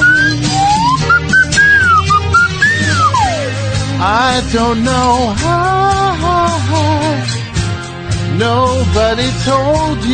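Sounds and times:
slide whistle playing a wavering melody: 0.0 - 3.8
instrumental backing track: 0.0 - 10.1
speech: 4.1 - 7.4, 8.4 - 10.1.

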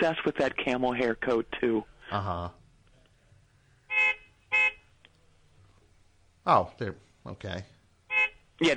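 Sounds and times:
speech: 0.0 - 2.6, 6.4 - 7.7, 8.6 - 8.7
blaring car horn honks: 3.9 - 4.9, 8.1 - 8.5.

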